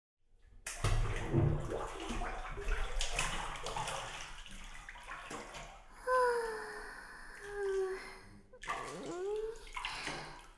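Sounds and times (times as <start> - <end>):
water sloshing as a person lowers into a hot bath: 0.3 - 10.5
person sighing: 6.0 - 10.3.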